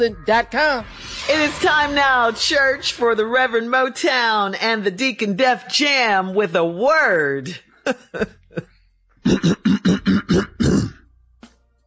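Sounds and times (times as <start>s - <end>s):
speech: 0.0s - 8.4s
person clearing throat: 9.2s - 11.1s.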